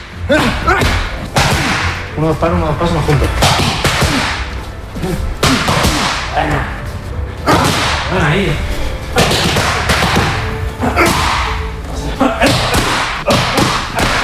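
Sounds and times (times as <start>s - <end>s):
boxing punches hitting training pads: 0.3s - 2.0s, 3.3s - 4.5s, 5.4s - 6.3s, 7.5s - 8.1s, 9.2s - 11.6s, 12.4s - 14.2s
speech: 2.2s - 3.8s, 5.0s - 5.3s, 6.4s - 6.8s, 8.1s - 9.3s.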